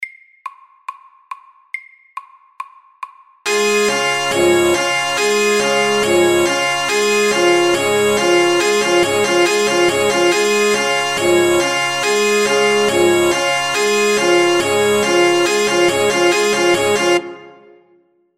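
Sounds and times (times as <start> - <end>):
alarm: 3.5 - 17.7.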